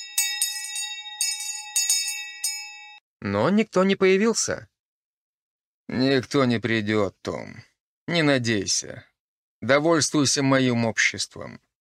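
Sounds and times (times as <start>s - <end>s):
small hand bell held in two fingers ringing: 0.0s - 3.0s
speech: 3.2s - 4.7s, 5.9s - 11.7s.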